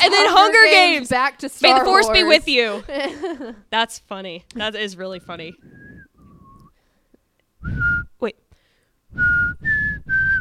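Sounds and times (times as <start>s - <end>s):
speech: 0.1s - 5.9s, 7.6s - 8.4s
laughter: 2.6s - 3.6s
person whistling a short three-note tune: 5.6s - 6.8s, 7.6s - 8.2s, 9.1s - 10.4s.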